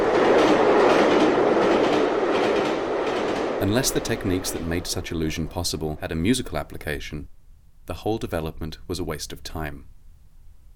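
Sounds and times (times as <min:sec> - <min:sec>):
faint rhythmic clatter of train wheels and carriages: 0:00.0 - 0:05.8
train passing: 0:00.0 - 0:07.1
speech: 0:03.6 - 0:09.9.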